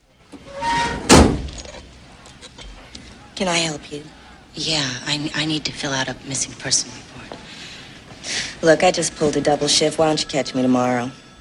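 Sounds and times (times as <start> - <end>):
desk drawer slamming shut in an office: 0.8 - 1.6
speech: 3.4 - 7.2, 8.2 - 11.2.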